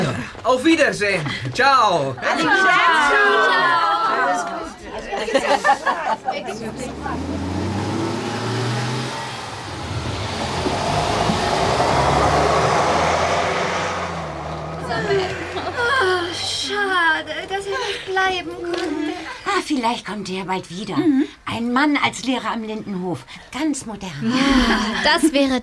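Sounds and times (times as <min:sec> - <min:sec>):
people chattering: 0:00.0 - 0:23.2, 0:23.8 - 0:25.6
speech: 0:00.2 - 0:04.5, 0:05.2 - 0:07.4, 0:15.1 - 0:25.6
laughter: 0:02.2 - 0:07.5, 0:14.7 - 0:19.4, 0:24.2 - 0:25.5
bus engine revving as it pulls away: 0:05.8 - 0:18.1.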